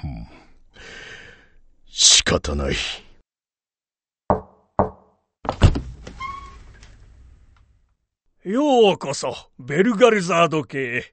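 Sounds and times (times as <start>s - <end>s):
speech: 2.0s - 3.0s, 8.4s - 11.1s
knocks at the front entrance of a mansion: 4.3s - 5.9s
door rattle: 5.5s - 7.4s
front door of a mansion creaking open: 5.5s - 7.7s.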